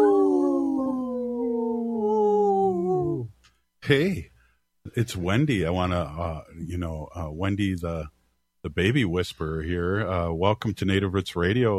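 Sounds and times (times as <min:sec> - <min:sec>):
single wolf howl: 0:00.0 - 0:03.3
speech: 0:03.9 - 0:04.3, 0:05.0 - 0:11.7.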